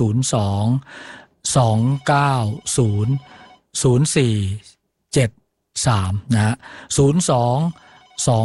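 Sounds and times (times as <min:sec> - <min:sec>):
speech: 0:00.0 - 0:08.4
telephone ringing for an incoming listener call: 0:01.8 - 0:03.6, 0:07.6 - 0:08.4.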